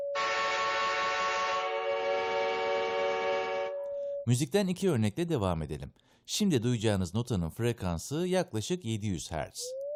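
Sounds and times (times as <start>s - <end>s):
steam-style train whistle blast: 0.1s - 4.1s
speech: 4.3s - 9.8s.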